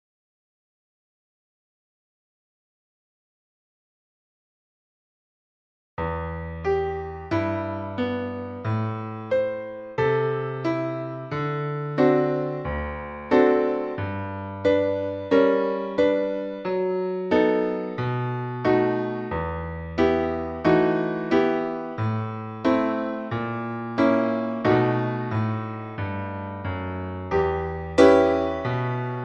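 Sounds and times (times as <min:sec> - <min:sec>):
piano without click: 0:06.0 - 0:29.2.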